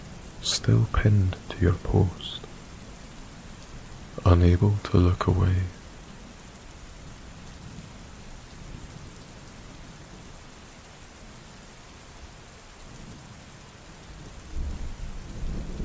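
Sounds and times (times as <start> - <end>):
rainfall in a thunderstorm: 0.0 - 15.8
speech: 0.6 - 2.5, 4.2 - 5.8
thunder rumble: 14.5 - 15.8.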